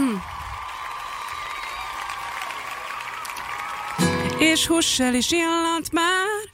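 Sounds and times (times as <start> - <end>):
small studio audience clapping in a radio studio: 0.0 - 4.6
speech: 4.4 - 6.4.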